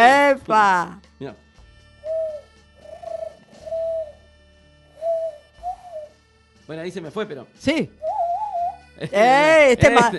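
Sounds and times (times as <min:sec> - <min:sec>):
speech: 0:00.0 - 0:01.4, 0:06.7 - 0:08.1, 0:09.0 - 0:10.1
pigeon cooing softly: 0:02.0 - 0:04.3, 0:05.0 - 0:06.2, 0:08.0 - 0:08.9.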